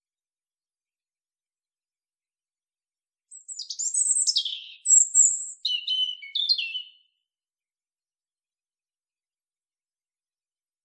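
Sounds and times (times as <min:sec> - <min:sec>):
European robin singing: 0:03.3 - 0:07.2.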